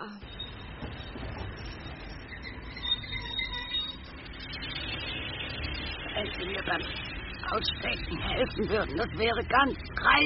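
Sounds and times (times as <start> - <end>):
faint metallic squeals and rattles of train carriage: 0.2 - 10.1
train carriage rolling into station: 0.2 - 10.2
speech: 6.7 - 10.2.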